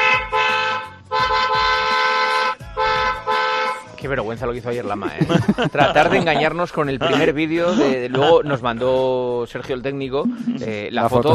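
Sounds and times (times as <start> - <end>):
car horn honking: 0.0 - 3.9
speech: 4.0 - 11.3
laughter: 5.0 - 9.2, 10.3 - 10.8.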